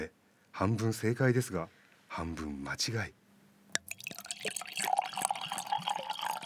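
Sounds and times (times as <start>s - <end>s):
speech: 0.0s - 3.2s, 4.4s - 4.6s
water pouring from a 720 ml sake bottle: 3.8s - 6.4s.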